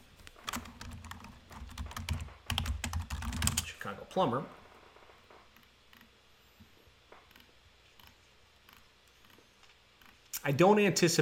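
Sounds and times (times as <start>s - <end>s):
computer keyboard keys clicking while typing: 0.5s - 3.7s
speech: 3.9s - 4.6s, 10.4s - 11.2s.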